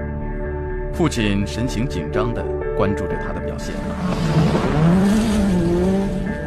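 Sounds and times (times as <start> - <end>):
speech: 1.0 - 4.7
race car engine drifting through turns on gravel: 3.8 - 6.4
tires squealing as a car drifts on gravel: 3.8 - 6.4.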